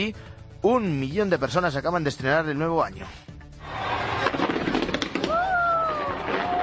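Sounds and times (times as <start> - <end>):
speech: 0.0 - 3.3
fireworks display exploding: 3.8 - 6.6.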